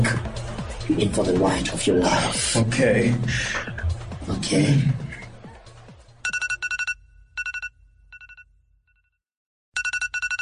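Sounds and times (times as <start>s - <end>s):
speech: 0.9s - 3.7s, 4.3s - 5.0s
electronic alarm ringing in rapid high beeps: 6.2s - 8.4s, 9.8s - 10.4s.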